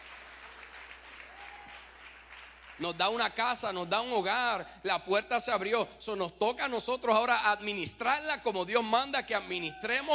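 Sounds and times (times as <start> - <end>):
church congregation applauding: 0.0 - 3.6
speech: 2.8 - 10.1.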